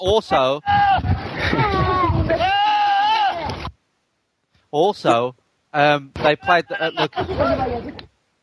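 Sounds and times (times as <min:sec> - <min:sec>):
speech: 0:00.0 - 0:01.7, 0:04.7 - 0:08.0
goat screaming: 0:00.6 - 0:03.6
laughter: 0:01.3 - 0:02.7, 0:06.2 - 0:08.0.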